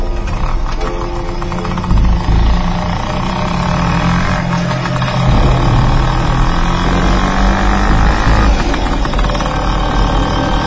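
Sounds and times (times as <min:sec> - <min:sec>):
motorbike engine running on a rain-wet road: 0:00.0 - 0:10.6.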